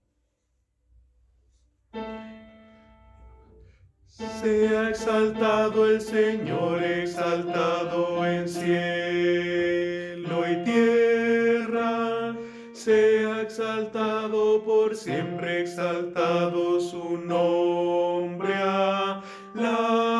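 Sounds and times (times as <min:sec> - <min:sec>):
tenor singing: 0:04.2 - 0:20.1.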